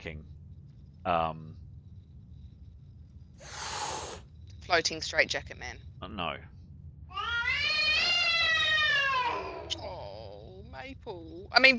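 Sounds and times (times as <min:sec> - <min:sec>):
speech: 0:00.0 - 0:00.3, 0:01.0 - 0:01.6, 0:04.7 - 0:06.6, 0:10.8 - 0:11.7
domestic cat giving a long strained meow: 0:07.1 - 0:10.4.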